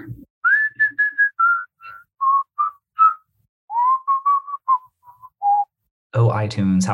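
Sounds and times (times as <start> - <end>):
person whistling a phone ringtone intro jingle: 0.4 - 5.7
speech: 6.2 - 6.9.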